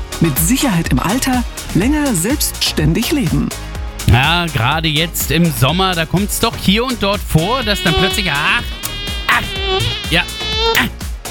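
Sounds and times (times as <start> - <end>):
speech: 0.2 - 11.0
mosquito buzzing: 5.6 - 6.0, 6.9 - 11.0.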